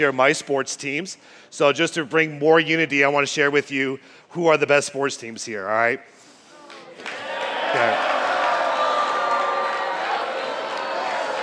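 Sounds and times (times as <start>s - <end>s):
speech: 0.0s - 6.2s, 7.7s - 8.1s
audience booing at a speaker: 7.2s - 11.4s.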